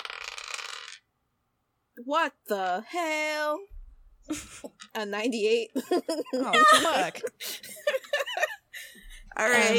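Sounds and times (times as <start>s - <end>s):
dice clattering and rattling across a hard tabletop: 0.0s - 1.1s
speech: 2.0s - 7.6s, 9.4s - 9.7s.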